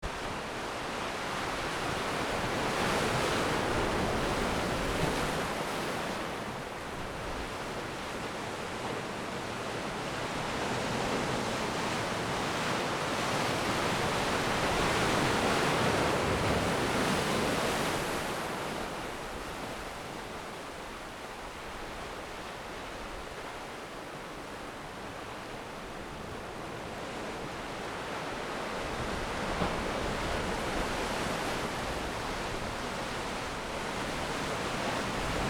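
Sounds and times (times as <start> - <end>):
ocean: 0.0 - 35.4.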